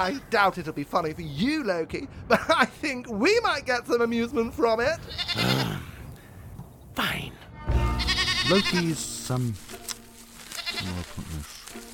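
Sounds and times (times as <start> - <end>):
speech: 0.0 - 5.9, 8.5 - 9.8, 10.8 - 11.8
goat bleating: 5.0 - 5.8, 7.6 - 9.0, 10.4 - 11.3.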